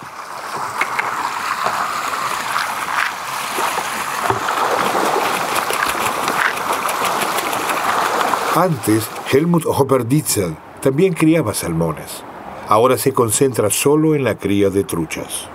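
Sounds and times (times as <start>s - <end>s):
farmed trout thrashing and splashing while feeding at a fish farm in Puyuhuapi: 0.0s - 9.4s
speech: 8.6s - 15.5s.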